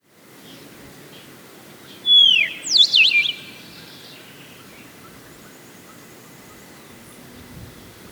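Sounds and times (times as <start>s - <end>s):
black-crested warbler Myiothlypis nigrocristata descending whistle and twisting notes: 1.9s - 4.9s.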